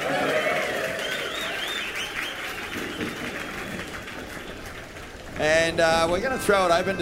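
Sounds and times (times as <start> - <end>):
whoops and cheers: 0.0 - 3.8
live audience applause: 0.0 - 6.9
speech: 5.4 - 6.9.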